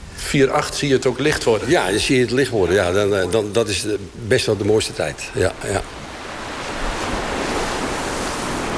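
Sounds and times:
heavy storm surf at sea at night: 0.0 - 8.7
speech: 0.3 - 6.0
wind at sea at night: 4.6 - 8.7.

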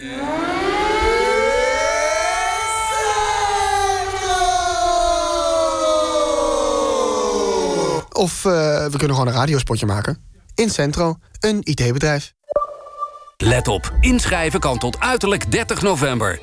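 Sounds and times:
civil defense air raid siren wailing: 0.0 - 8.0
speech: 8.2 - 12.4, 13.4 - 16.4.

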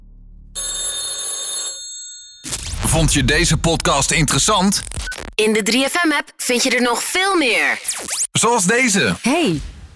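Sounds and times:
bright metallic telephone bell ringing: 0.6 - 2.8
speech: 2.9 - 9.8.

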